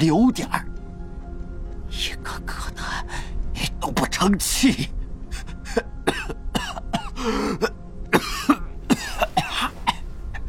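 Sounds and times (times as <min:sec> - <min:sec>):
speech: 0:00.0 - 0:00.7, 0:02.0 - 0:05.0, 0:07.2 - 0:07.7
old man coughing violently: 0:05.7 - 0:10.1.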